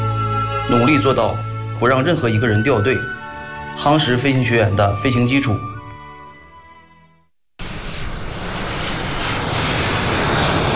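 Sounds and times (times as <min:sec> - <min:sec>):
speech: 0:00.7 - 0:03.2, 0:03.8 - 0:05.7
JL-8 trainer aircraft jet engine roaring at takeoff at an air force airfield: 0:07.6 - 0:10.7.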